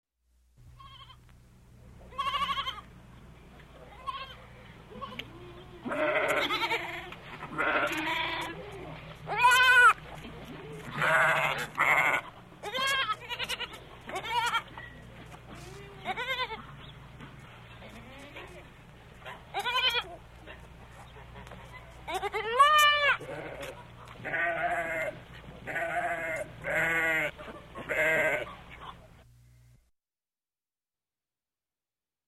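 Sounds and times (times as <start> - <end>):
young goats in a pen: 0.8 - 1.2, 2.1 - 2.9, 3.8 - 17.0, 17.8 - 18.9, 19.5 - 20.7, 21.3 - 29.0.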